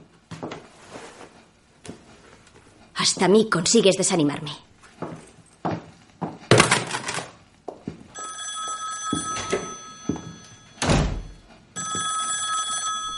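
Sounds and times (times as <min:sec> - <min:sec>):
speech: 0:03.0 - 0:04.7
telephone ringing, left unanswered: 0:08.1 - 0:13.1.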